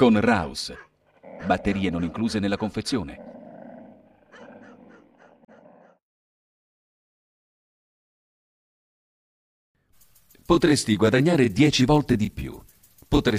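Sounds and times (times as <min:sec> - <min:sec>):
speech: 0:00.0 - 0:03.3, 0:10.5 - 0:13.3
border dogs growling and snarling: 0:00.8 - 0:06.0.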